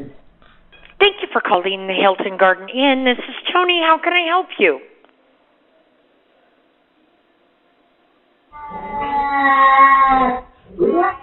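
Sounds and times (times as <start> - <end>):
speech: 1.3 - 4.9
cat meowing in a hotel room: 8.6 - 11.2.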